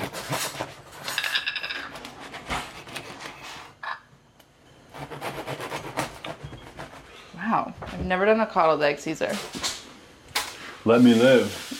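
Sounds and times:
knife sawing through a crusty fresh loaf of sourdough bread: 0.0 - 1.0, 2.0 - 3.7, 4.9 - 7.2
speech: 7.5 - 9.6, 10.8 - 11.6.

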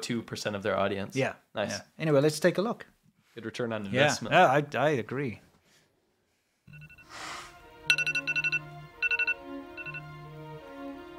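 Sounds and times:
speech: 0.1 - 5.5
bright electronic phone ringtone melody with rapid repeating beeps: 6.7 - 7.2, 7.9 - 10.2.

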